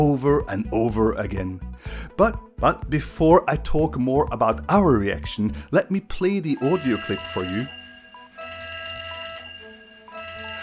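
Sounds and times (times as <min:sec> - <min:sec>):
speech: 0:00.0 - 0:07.8
fire alarm ringing with a harsh metallic tone: 0:06.6 - 0:10.6.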